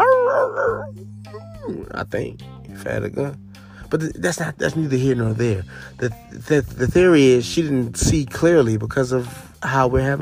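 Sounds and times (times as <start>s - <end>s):
person imitating a wolf howl: 0.0s - 1.9s
speech: 0.9s - 10.2s.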